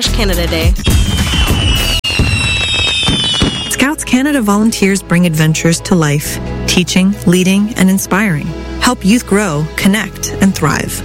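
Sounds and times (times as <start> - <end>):
speech: 0.0 - 0.9, 4.1 - 11.0
Canada Day fireworks crackling and banging: 0.8 - 4.0.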